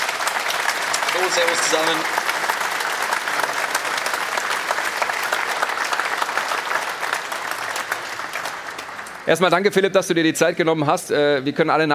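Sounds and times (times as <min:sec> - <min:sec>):
studio audience applause: 0:00.0 - 0:10.3
speech: 0:01.2 - 0:02.3, 0:09.3 - 0:11.9.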